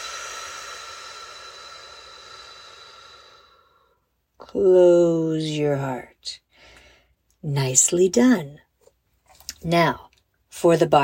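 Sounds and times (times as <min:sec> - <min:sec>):
slow exhale during a breathing exercise: 0:00.0 - 0:04.1
speech: 0:04.4 - 0:06.4, 0:07.4 - 0:08.6, 0:09.6 - 0:10.0, 0:10.6 - 0:11.0.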